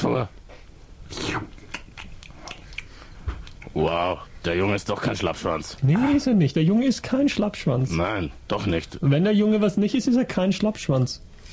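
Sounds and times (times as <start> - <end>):
speech: 0.1 - 0.4, 1.1 - 1.5, 3.8 - 11.5
person chewing and swallowing thumbtacks: 1.2 - 3.8.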